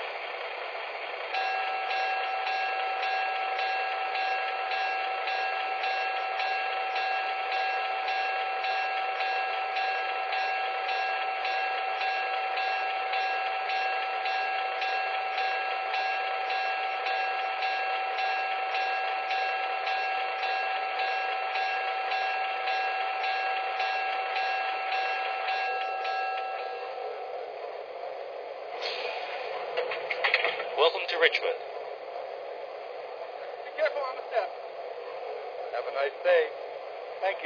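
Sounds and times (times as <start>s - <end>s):
train rolling along a station track: 0.0s - 37.4s.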